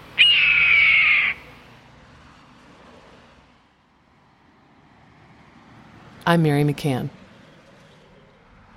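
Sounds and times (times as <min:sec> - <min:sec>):
red-tailed hawk screaming: 0:00.2 - 0:01.5
speech: 0:06.3 - 0:07.2.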